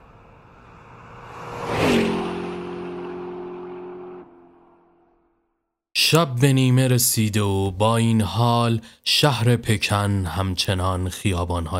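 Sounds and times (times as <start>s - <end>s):
car engine revving as the car speeds off: 0.0s - 5.3s
speech: 6.0s - 11.7s.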